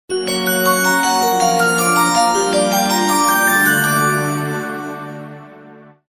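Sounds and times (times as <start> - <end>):
magic SMS tone ringtone: 0.2 - 4.4.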